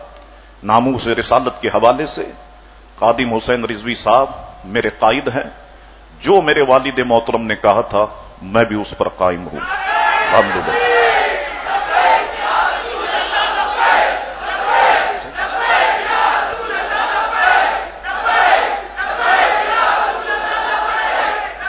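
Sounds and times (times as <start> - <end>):
speech: 0.6 - 5.6, 6.2 - 11.0
large crowd chanting a slogan in unison: 10.0 - 21.6.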